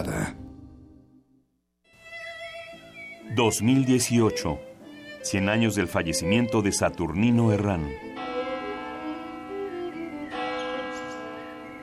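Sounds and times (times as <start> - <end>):
speech: 3.4 - 8.1
cathedral church bells ringing: 8.0 - 11.8.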